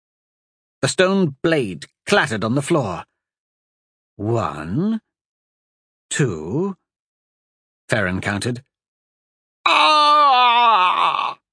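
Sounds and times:
speech: 0.8s - 3.1s, 4.2s - 5.1s, 6.1s - 6.8s, 7.9s - 8.7s, 9.7s - 10.1s
man screaming in pain as his arm bone is snapped: 9.6s - 11.4s.

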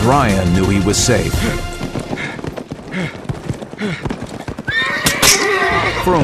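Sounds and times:
speech: 0.0s - 1.7s, 2.9s - 3.2s, 3.8s - 4.2s, 6.0s - 6.2s
galloping horse hoofbeats: 0.0s - 6.2s
horse whinnying: 3.2s - 6.2s.

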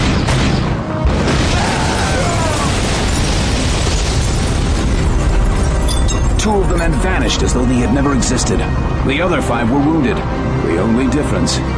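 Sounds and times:
grenades from a grenade launcher exploding: 0.0s - 8.2s
speech: 6.5s - 11.7s.

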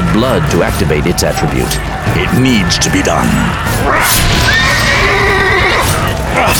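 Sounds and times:
dense noisy background: 0.0s - 6.5s
speech: 0.2s - 4.9s, 6.4s - 6.5s
dying horse whinnying: 3.8s - 6.5s.

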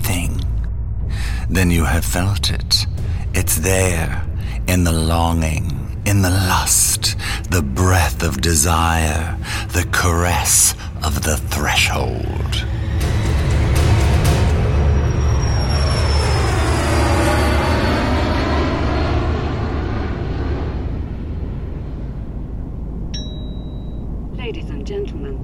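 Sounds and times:
airplane cabin roar as the plane comes in for landing: 0.0s - 25.4s
high whine falling in pitch: 0.0s - 25.4s
speech: 1.5s - 12.8s
cabin chime: 23.1s - 24.1s.

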